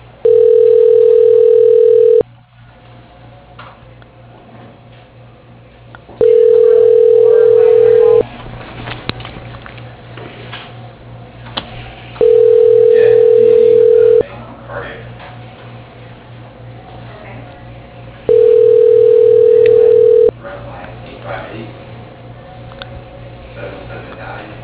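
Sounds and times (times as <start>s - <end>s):
telephone ringback tone during a call transfer: 0.2s - 2.2s, 6.2s - 8.2s, 12.2s - 14.2s, 18.3s - 20.3s.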